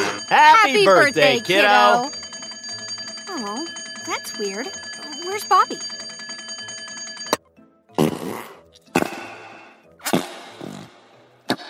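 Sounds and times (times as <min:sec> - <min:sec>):
speech: 0:00.3 - 0:02.2, 0:03.3 - 0:06.0
fart putty squelching: 0:08.0 - 0:09.1, 0:10.0 - 0:11.1.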